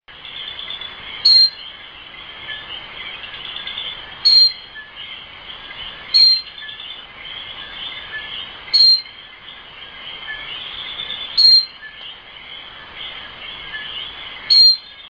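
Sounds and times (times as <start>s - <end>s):
Eleutherodactylus cochranae frog calling with short piercing whistle in Puerto Rico: 0.2s - 15.1s.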